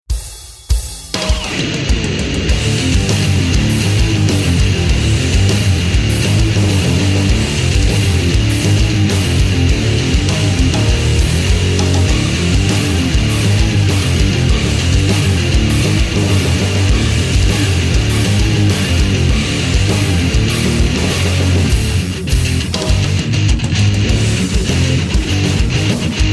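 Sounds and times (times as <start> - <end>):
heavy guitar rock: 1.1 - 26.3.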